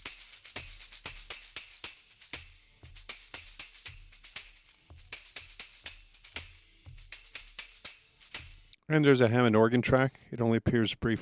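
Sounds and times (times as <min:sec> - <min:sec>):
tambourine part in a rock song: 0:00.0 - 0:08.8
speech: 0:08.9 - 0:11.2.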